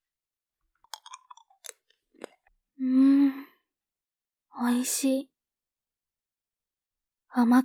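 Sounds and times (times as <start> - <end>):
chewing and crunching a sweet candy rolled on the tongue: 0.8 - 2.6
speech: 4.6 - 5.3, 7.4 - 7.6.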